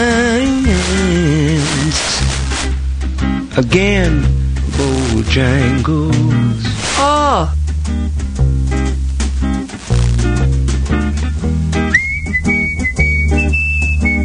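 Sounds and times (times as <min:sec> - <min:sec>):
loud backing music: 0:00.0 - 0:14.2
speech: 0:03.6 - 0:07.6
person whistling a clear bright melody: 0:11.8 - 0:14.2.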